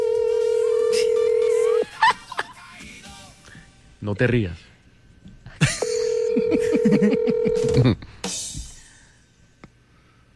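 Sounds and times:
telephone being dialed electronic tone: 0.0 - 1.8, 5.8 - 7.8
speech: 4.0 - 4.7, 6.5 - 8.4.

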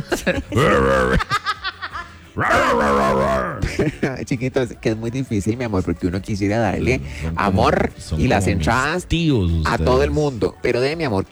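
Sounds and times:
speech: 0.0 - 1.4, 4.1 - 11.3
laughter: 0.0 - 4.4
person's voice imitating a dog barking with howling yelps and short yaps: 0.6 - 1.2, 2.4 - 3.8.

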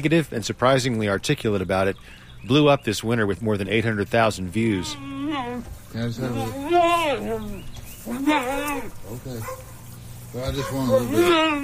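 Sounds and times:
speech: 0.0 - 9.7, 10.3 - 11.6
low steady hum: 0.0 - 11.6
mule braying: 4.5 - 11.6.

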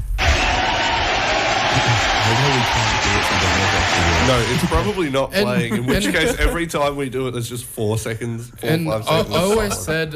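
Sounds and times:
crowd cheers and shouts: 0.1 - 5.0
crowd applause: 0.2 - 6.2
laughter: 1.6 - 6.8, 9.0 - 10.0
speech: 2.7 - 10.1.

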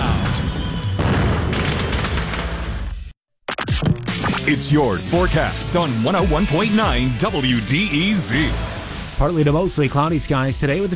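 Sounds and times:
fireworks boom: 0.0 - 3.1
speech: 4.5 - 10.9.

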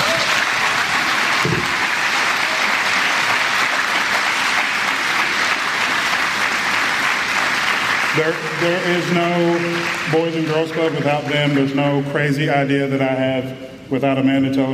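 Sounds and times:
audience applause: 0.0 - 11.8
speech: 8.2 - 14.7.

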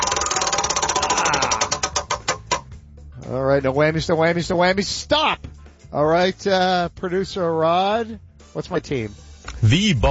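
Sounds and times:
prize wheel spinning with clicking pegs: 0.0 - 2.6
speech: 3.6 - 10.0.

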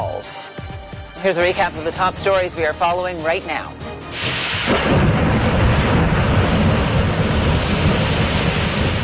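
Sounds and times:
speech: 1.2 - 5.0
thunder rumbling in a thunderstorm: 4.2 - 9.0.

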